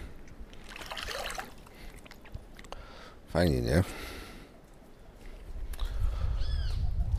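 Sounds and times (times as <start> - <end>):
birds chirping: 2.8 - 7.1
speech: 3.3 - 4.1.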